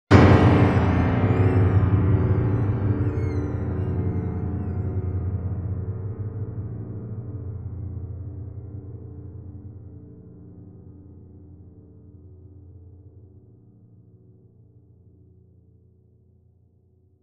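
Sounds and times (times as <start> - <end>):
piano sting: 0.1 - 6.2.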